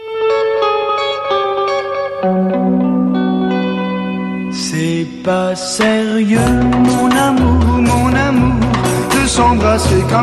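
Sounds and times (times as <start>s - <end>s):
twangy electric guitar with reverb in a rock song intro: 0.0s - 10.2s
speech: 2.2s - 2.4s, 5.0s - 10.2s.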